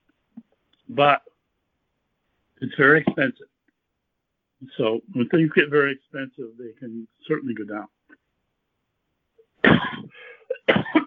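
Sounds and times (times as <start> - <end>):
speech: 0.9 - 1.3, 2.6 - 3.5, 4.6 - 8.0
man coughing: 9.6 - 11.0.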